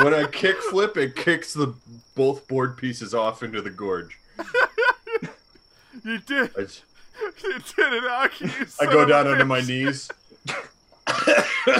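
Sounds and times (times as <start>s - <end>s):
laughter: 0.0s - 1.3s, 4.3s - 11.7s
speech: 0.0s - 4.6s, 6.0s - 11.7s
person coughing: 8.9s - 11.7s.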